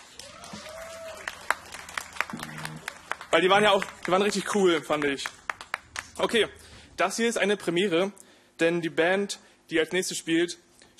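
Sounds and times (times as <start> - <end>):
crowd applauding for a band: 0.0 - 6.4
speech: 3.3 - 5.4, 6.2 - 10.7.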